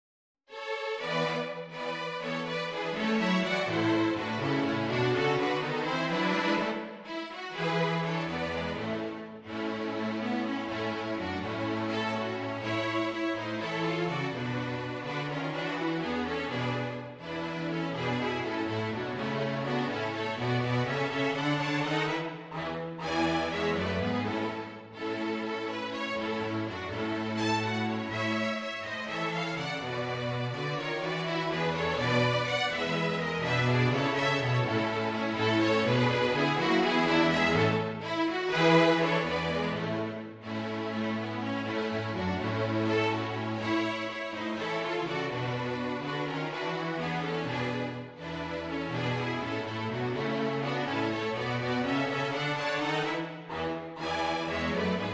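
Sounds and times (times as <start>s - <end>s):
strings playing a carol: 0.5s - 55.1s.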